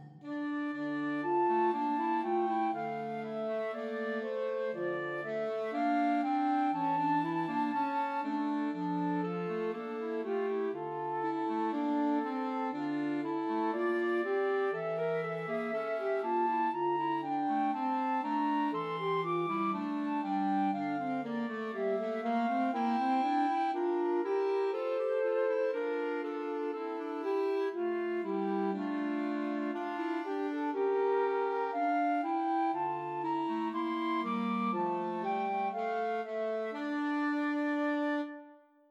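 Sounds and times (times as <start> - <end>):
trio for flute, clarinet and alto saxophone: 0.3 - 38.6.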